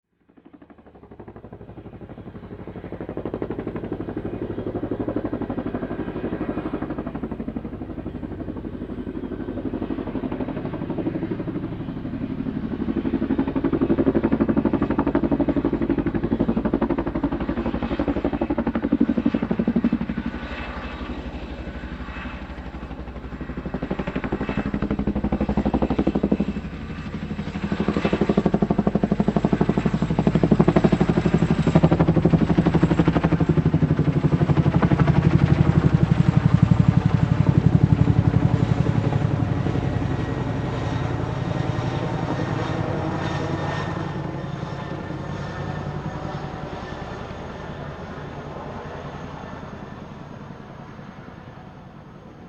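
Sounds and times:
military helicopter passing by: 0.1 - 52.4.

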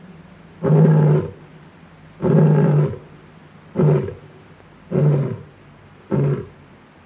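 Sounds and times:
male lion roaring in deep rough grunts: 0.6 - 1.4, 2.2 - 3.1, 3.7 - 4.3, 4.9 - 6.5.

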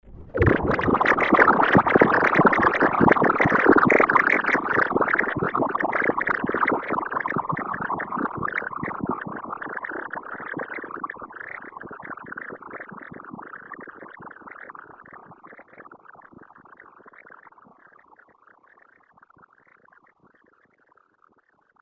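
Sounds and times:
bubbling swamp water: 0.1 - 20.6.

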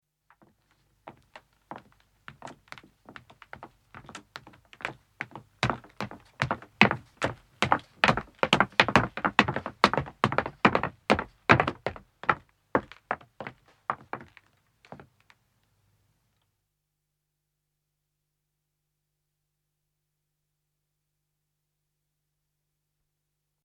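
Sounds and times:
two men's footsteps on wood descending, approaching and stopping: 0.4 - 15.1.

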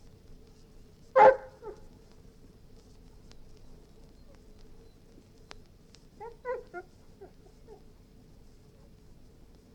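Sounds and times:
golden retriever barking: 1.2 - 1.8, 6.2 - 6.8.

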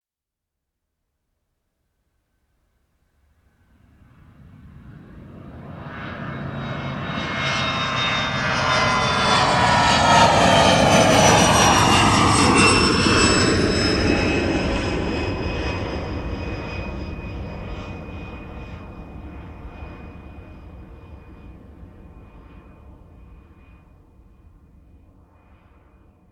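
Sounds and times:
large commercial jet airliner flying very low overhead: 3.5 - 26.2.

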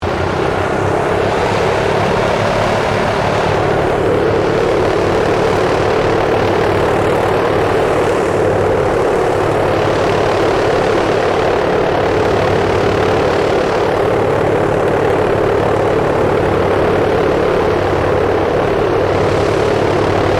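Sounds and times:
Lockheed L-1049 Super Constellation aircraft idling: 0.0 - 20.3.

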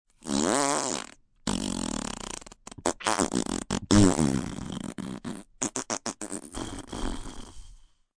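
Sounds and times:
long wet fart made with the mouth: 0.2 - 7.8.

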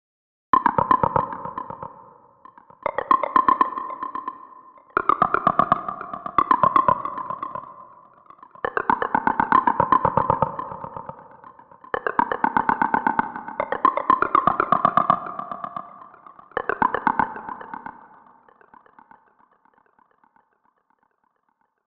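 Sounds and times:
eerie alien chattering plant calls: 2.9 - 19.0.

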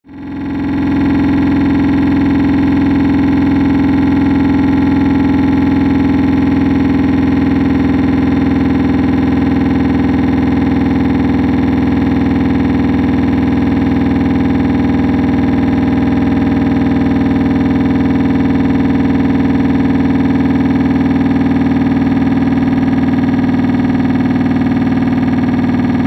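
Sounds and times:
hard mechanical buzzing drone descending: 0.1 - 26.0.

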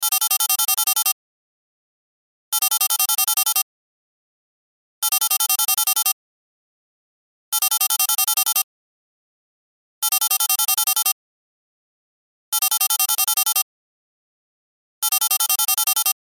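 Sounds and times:
cell phone ringtone: 0.0 - 1.2, 2.5 - 3.7, 5.0 - 6.2, 7.5 - 8.7, 10.0 - 11.2, 12.5 - 13.7, 15.0 - 16.2.

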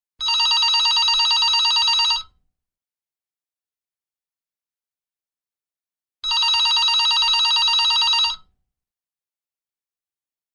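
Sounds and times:
digital telephone ringing: 0.2 - 2.4, 6.2 - 8.5.

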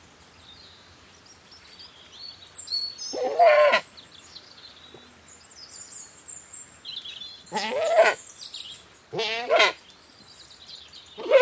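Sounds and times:
small birds singing thin high phrases: 0.0 - 11.3
British Saanen goat bleating outdoors: 3.2 - 3.8, 7.5 - 8.2, 9.1 - 9.8, 11.2 - 11.3.

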